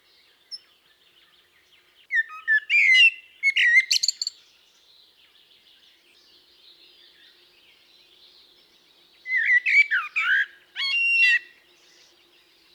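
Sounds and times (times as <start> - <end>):
common blackbird song, Turdus merula: 0.0 - 12.7.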